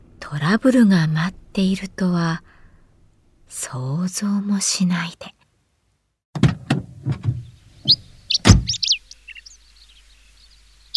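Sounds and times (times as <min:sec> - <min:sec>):
speech: 0:00.3 - 0:02.6, 0:03.5 - 0:05.4
wagon van sliding door rattling and clunking open: 0:06.3 - 0:08.8
birds chirping: 0:07.2 - 0:10.9.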